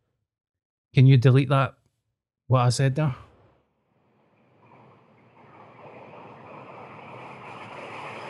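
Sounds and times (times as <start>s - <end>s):
speech: 1.0s - 1.8s, 2.5s - 3.3s
deep rumbling brown noise: 4.0s - 8.2s.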